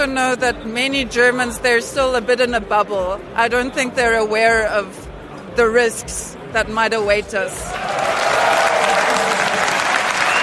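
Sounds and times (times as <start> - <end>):
speech: 0.0 - 5.0, 5.6 - 8.1
large crowd cheering and applauding at rally: 7.6 - 10.4.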